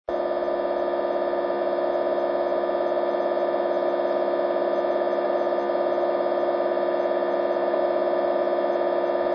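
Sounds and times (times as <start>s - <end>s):
TETRA radio interference signals in the 70cm band: 0.1s - 9.3s.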